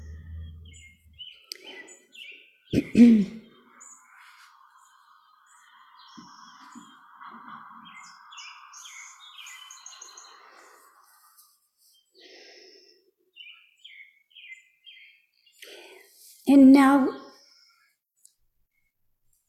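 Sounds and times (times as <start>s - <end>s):
low thump: 0.0s - 1.2s
birds singing and chirping: 0.0s - 11.3s, 11.9s - 16.1s
speech: 2.7s - 3.4s.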